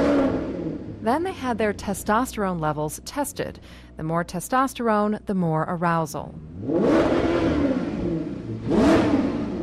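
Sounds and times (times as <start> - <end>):
Maserati GranTurismo S engine revving: 0.0 - 2.6, 6.4 - 9.6
speech: 1.0 - 7.2.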